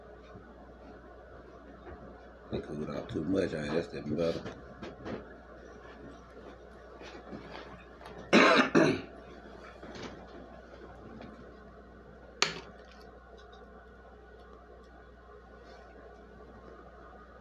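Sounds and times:
speech: 2.5 - 4.8
person coughing harshly after smoking: 8.3 - 9.1.

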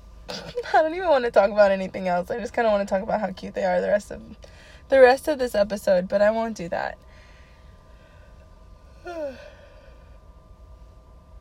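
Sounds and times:
speech: 0.5 - 7.0, 9.0 - 9.5
breathy yawn: 8.9 - 9.9.

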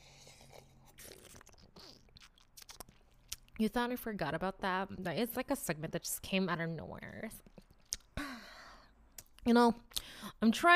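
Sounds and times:
person sipping hot morning coffee: 0.0 - 3.2
short slurping wet mouth noises: 0.0 - 3.4
speech: 3.6 - 7.5, 9.4 - 10.7.

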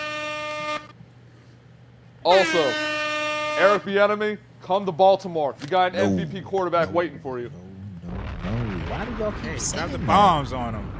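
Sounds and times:
air horn blast: 0.0 - 1.0, 2.3 - 4.0
speech: 2.2 - 3.0, 3.6 - 10.9.

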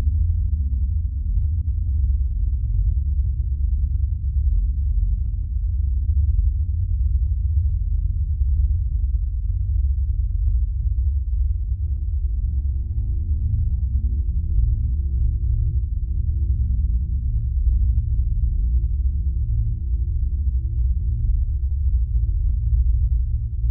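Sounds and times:
steady deep 50 Hz gamma wave tone: 0.0 - 23.7.

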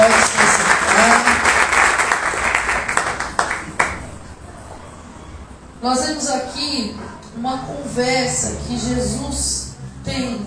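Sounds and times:
crowd applauding in a reverberant room: 0.0 - 4.2
speech: 6.3 - 10.4.

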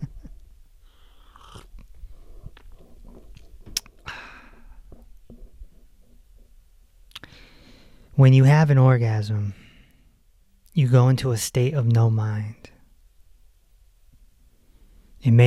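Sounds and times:
person sipping hot mullein leaf tea: 0.9 - 5.9
mouth clicks and swallowing: 1.1 - 7.4
slurp of hot mullein leaf tea: 1.2 - 4.0
speech: 8.2 - 9.6, 10.8 - 12.8, 15.2 - 15.4.

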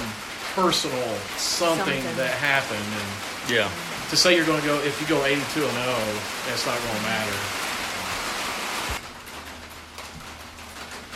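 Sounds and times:
heavy rain drumming on a tin roof: 0.0 - 11.1
speech: 0.6 - 7.6.

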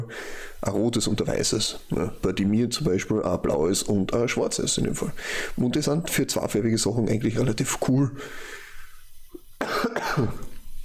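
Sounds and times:
speech: 0.1 - 8.6, 9.7 - 10.4
cough: 9.6 - 10.6.

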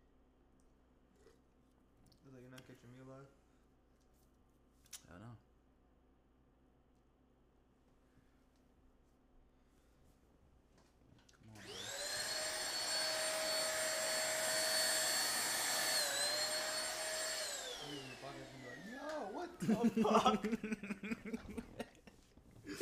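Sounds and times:
speech: 2.3 - 3.4, 5.0 - 5.5, 18.3 - 21.1
vacuum cleaner whining and powering down: 11.6 - 21.0
laughter: 19.4 - 22.1.

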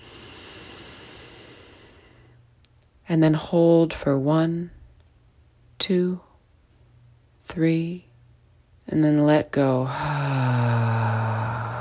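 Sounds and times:
long deep inhale through the nose: 0.0 - 2.4
speech: 3.1 - 4.8, 5.8 - 6.3, 7.5 - 8.1, 8.9 - 11.0.

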